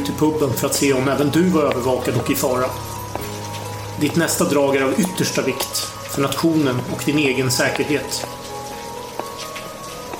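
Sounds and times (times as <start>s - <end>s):
rain falling: 0.0s - 10.1s
speech: 0.1s - 3.0s, 4.0s - 8.4s.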